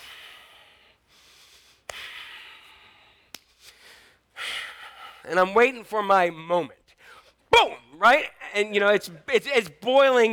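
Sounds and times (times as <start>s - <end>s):
sharp sniff-like catches: 0.0s - 4.2s
heavy angry breathing through flaring nostrils: 0.0s - 5.3s
speech: 5.2s - 6.8s, 8.0s - 10.3s.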